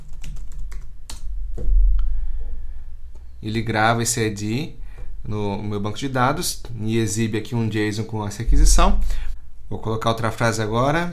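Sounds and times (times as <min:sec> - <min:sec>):
clicky keystrokes typing words on a computer keyboard: 0:00.0 - 0:01.3
steady low hum: 0:01.3 - 0:03.5, 0:08.5 - 0:09.7
speech: 0:03.4 - 0:11.1.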